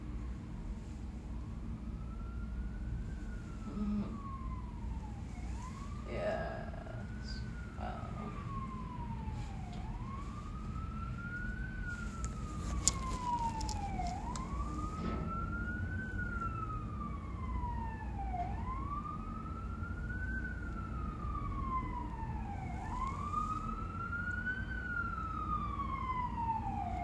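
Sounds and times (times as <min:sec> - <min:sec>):
emergency vehicle sirens wailing outside: 0:00.0 - 0:27.0
low rumble of traffic: 0:00.0 - 0:27.0.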